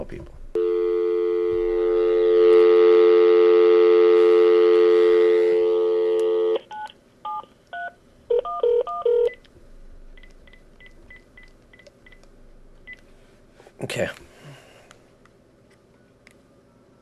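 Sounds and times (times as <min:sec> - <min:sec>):
speech: 0:00.0 - 0:00.4
telephone dial tone: 0:00.6 - 0:06.6.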